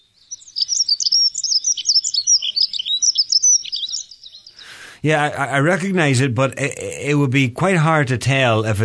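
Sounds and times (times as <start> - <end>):
dunnock singing a rapid high-pitched warbling phrase: 0.0 - 4.9
speech: 5.0 - 8.8.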